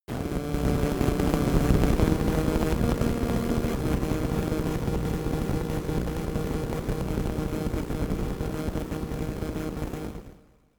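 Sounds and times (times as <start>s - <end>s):
science fiction static crackle noise: 0.1s - 10.4s.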